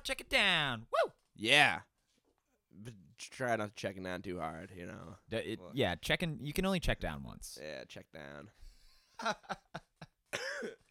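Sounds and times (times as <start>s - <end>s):
speech: 0.0s - 1.9s, 2.8s - 8.6s, 9.2s - 10.9s
person coughing with harsh raspy coughs: 10.3s - 10.9s.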